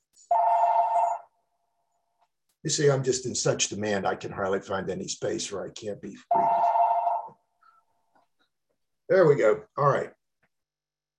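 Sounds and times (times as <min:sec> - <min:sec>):
telephone ringing with an electronic trill: 0:00.3 - 0:01.4, 0:06.3 - 0:07.4
speech: 0:02.6 - 0:06.5, 0:09.1 - 0:10.2.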